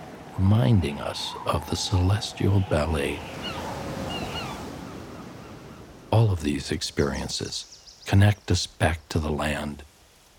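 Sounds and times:
ocean waves washing in with the shifting tide: 0.0 - 6.3
speech: 0.4 - 3.5, 6.2 - 9.9.

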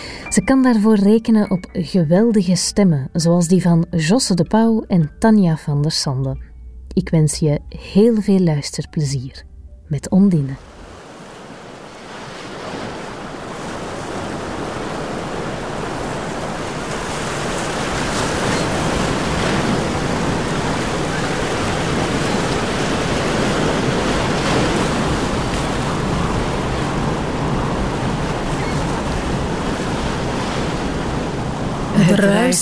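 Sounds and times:
ocean surf rolling and crashing: 0.0 - 1.4, 10.4 - 32.6
speech: 0.3 - 10.8.

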